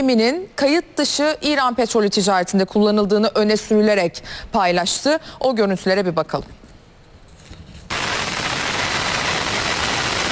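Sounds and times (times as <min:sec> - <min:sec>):
speech: 0:00.0 - 0:06.6
military helicopter hovering over the deck of an oil tanker in the Indian Ocean: 0:07.9 - 0:10.3.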